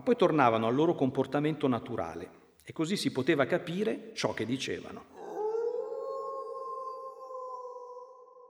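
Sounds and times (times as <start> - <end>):
speech: 0.0 - 5.2
dog howling: 5.2 - 8.4.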